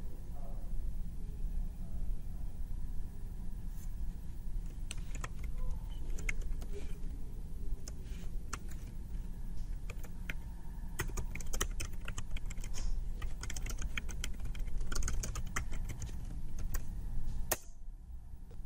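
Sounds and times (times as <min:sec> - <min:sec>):
steady low hum: 0:00.0 - 0:18.6
typing a text message on a computer keyboard: 0:04.8 - 0:06.8, 0:07.8 - 0:08.9, 0:09.7 - 0:10.4, 0:11.0 - 0:16.9.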